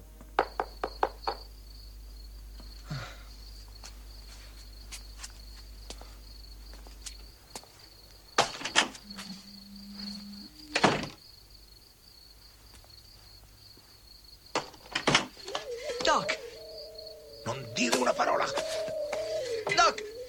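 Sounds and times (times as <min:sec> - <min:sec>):
faint drone: 0:00.0 - 0:20.2
sharp knocks on a door: 0:00.4 - 0:01.5
steady warbling hum: 0:09.0 - 0:10.8, 0:15.4 - 0:20.2.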